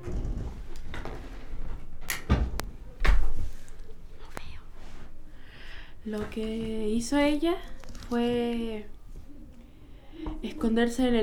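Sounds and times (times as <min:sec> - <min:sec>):
upstairs door slamming shut: 0:02.2 - 0:03.3
speech: 0:06.0 - 0:09.0, 0:10.2 - 0:11.2.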